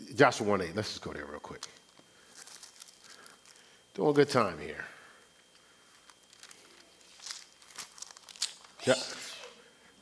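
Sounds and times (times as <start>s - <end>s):
speech: 0.2s - 1.8s, 4.0s - 4.9s, 8.8s - 9.2s
person sneezing: 8.8s - 9.7s.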